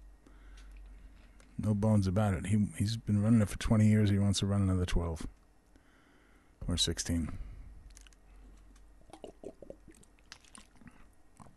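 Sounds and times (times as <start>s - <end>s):
speech: 1.6s - 5.4s, 6.7s - 7.5s
person gulping and swallowing water: 9.0s - 11.5s
wet mouth smacks and clicks while drinking water: 9.0s - 11.5s.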